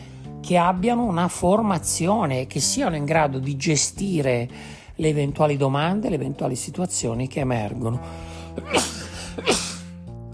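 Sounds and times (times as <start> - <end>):
speech: 0.5 - 9.6
person sneezing: 8.6 - 10.0.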